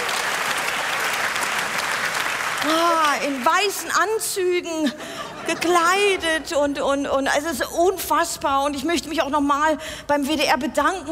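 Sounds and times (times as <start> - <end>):
crowd applauding: 0.0 - 4.0
speech: 2.6 - 11.0.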